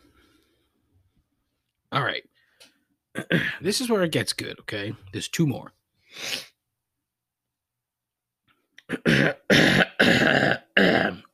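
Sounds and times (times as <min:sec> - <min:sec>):
phlegmy throat clearing: 0:03.1 - 0:03.6, 0:08.8 - 0:11.3
speech: 0:03.2 - 0:06.5.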